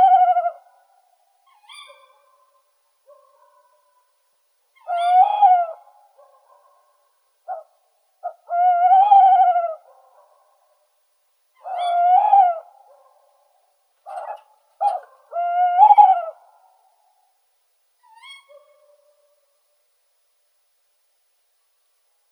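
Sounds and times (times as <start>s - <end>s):
tawny owl Strix aluco calling: 0.0s - 0.7s, 1.5s - 2.6s, 4.8s - 6.0s, 7.5s - 9.9s, 11.6s - 12.9s, 14.0s - 16.6s, 18.0s - 19.0s.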